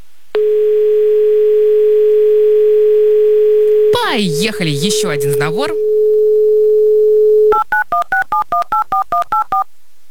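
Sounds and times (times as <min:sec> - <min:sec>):
steady telephone dial tone: 0:00.4 - 0:03.9, 0:05.8 - 0:09.6
speech: 0:04.4 - 0:05.8
DTMF keypad beeps of a telephone number being dialed: 0:05.9 - 0:09.7.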